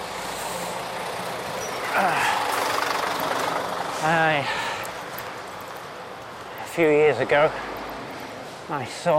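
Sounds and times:
large skip lorry engine rumbling during three-point turn: 0.0s - 6.3s
street noise: 0.0s - 9.1s
speech: 2.0s - 2.3s, 4.0s - 4.7s, 6.8s - 7.7s, 8.7s - 9.1s.

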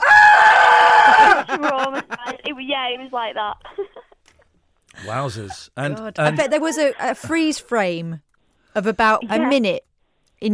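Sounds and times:
woman re-enacting a frightened scream: 0.0s - 1.6s
laughter: 1.0s - 2.6s
speech: 2.6s - 3.9s, 5.0s - 10.5s.

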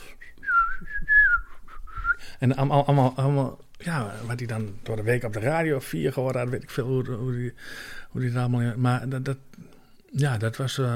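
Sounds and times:
person whistling a baroque-style melody: 0.0s - 2.2s
faint noise: 0.0s - 10.9s
speech: 2.4s - 10.9s.

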